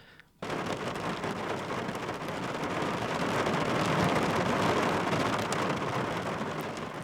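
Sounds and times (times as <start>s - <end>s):
dense rain drumming on a car heard from inside the vehicle: 0.3s - 7.0s.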